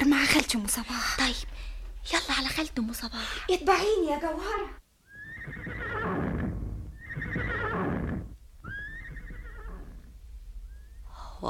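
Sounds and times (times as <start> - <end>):
speech: 0.4 - 4.8
horse neighing: 5.1 - 11.0.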